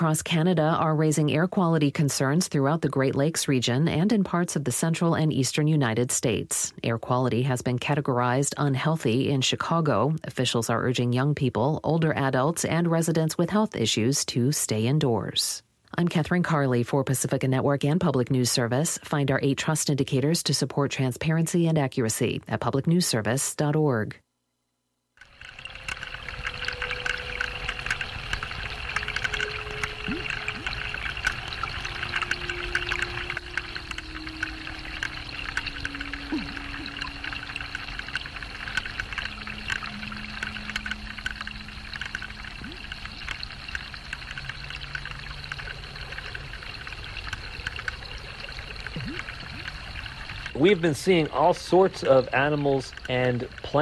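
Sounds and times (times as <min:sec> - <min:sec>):
speech: 0:00.0 - 0:24.2, 0:50.6 - 0:53.7
rainwater dripping and trickling from trees: 0:25.2 - 0:53.7.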